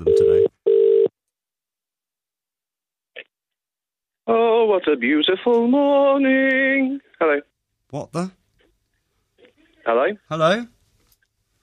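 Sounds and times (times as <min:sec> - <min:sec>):
electronic phone tone as a call is placed: 0:00.0 - 0:01.1
speech: 0:04.7 - 0:08.4, 0:09.8 - 0:10.8.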